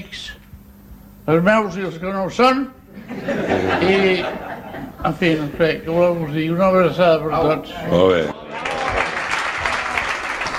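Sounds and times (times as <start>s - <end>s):
speech: 1.3s - 8.4s
laughter: 2.9s - 5.6s
crowd applauding after a speech at a hospitality guild gathering: 8.4s - 10.5s.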